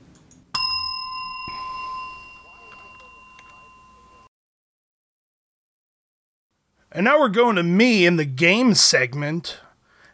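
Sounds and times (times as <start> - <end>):
bright bell ringing as segment transition: 0.6 - 4.3
speech: 7.0 - 9.6.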